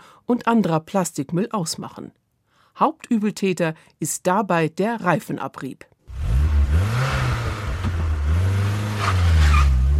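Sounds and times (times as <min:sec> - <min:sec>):
speech: 0:00.3 - 0:02.2, 0:02.8 - 0:06.9
car engine revving up accelerating from a standstill: 0:06.1 - 0:09.9
car tires screeching: 0:06.1 - 0:09.9.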